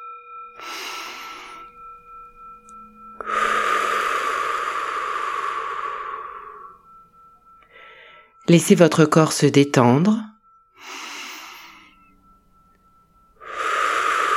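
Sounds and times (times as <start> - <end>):
deep breaths during a guided relaxation: 0.6 - 8.4, 10.8 - 14.3
speech: 8.5 - 11.0.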